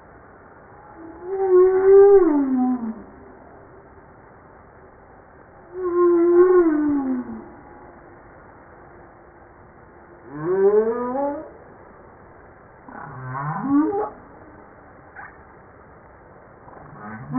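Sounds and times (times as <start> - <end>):
humpback whale song moans: 0.8 - 3.3, 5.7 - 8.0, 10.2 - 11.6, 12.9 - 14.6, 16.7 - 17.3.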